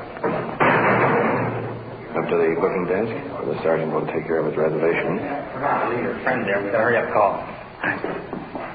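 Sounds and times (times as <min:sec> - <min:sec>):
heavy iron door slamming shut at a police station: 0:00.3 - 0:02.0
speech: 0:02.3 - 0:08.7.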